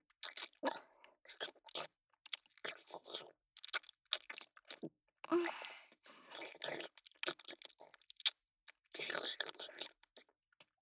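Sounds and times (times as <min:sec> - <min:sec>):
crunchy chewing and biting: 0:00.2 - 0:00.6, 0:01.3 - 0:04.8, 0:06.3 - 0:10.2.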